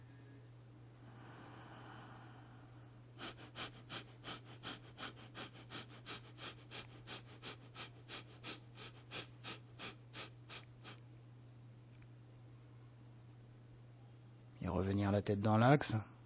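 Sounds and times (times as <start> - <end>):
constant low hum: 0.0 - 14.6
rapid abdominal breathing with the head tilted back: 1.1 - 11.0
speech: 14.6 - 16.1.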